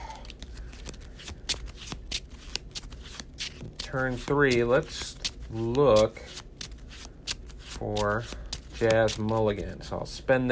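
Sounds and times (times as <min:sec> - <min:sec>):
playing cards being shuffled: 0:00.1 - 0:09.9
speech: 0:03.9 - 0:06.4, 0:07.8 - 0:10.5.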